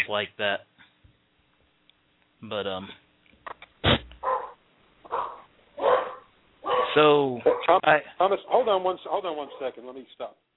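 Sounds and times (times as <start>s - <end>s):
speech: 0.0s - 0.7s, 2.4s - 3.0s, 6.9s - 10.4s
cocker spaniel barking: 4.2s - 7.8s, 9.4s - 9.8s.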